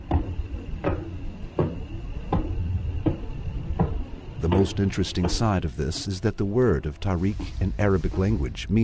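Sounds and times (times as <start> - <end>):
knock-like thuds from a star recording: 0.0 - 5.6
low rumbling hiss: 0.0 - 8.8
speech: 4.4 - 8.8.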